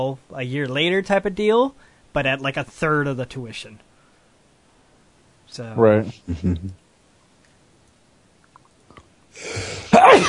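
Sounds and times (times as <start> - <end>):
speech: 0.0 - 3.9, 5.5 - 6.8
person sneezing: 9.4 - 10.2.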